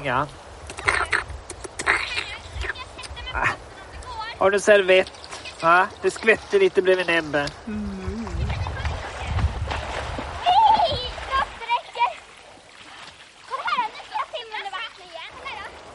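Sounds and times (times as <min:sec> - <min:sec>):
speech: 0:00.0 - 0:00.5, 0:03.3 - 0:03.7, 0:04.4 - 0:08.1
water splashing: 0:00.0 - 0:15.9
children calling and chattering at a distance: 0:00.7 - 0:04.4, 0:05.0 - 0:06.2, 0:07.9 - 0:09.5, 0:10.4 - 0:15.8.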